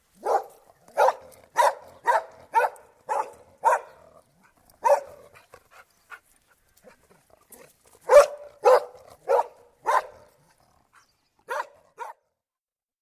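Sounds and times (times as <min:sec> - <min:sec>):
collie dog barking outdoors: 0:00.2 - 0:04.0, 0:04.8 - 0:05.3, 0:08.0 - 0:10.4, 0:11.5 - 0:12.2.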